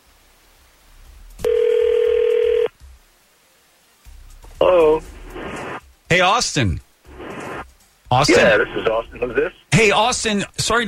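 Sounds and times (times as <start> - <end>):
electronic ringback tone from an outgoing telephone call: 1.4 - 2.7
speech: 6.1 - 6.8, 8.1 - 10.8.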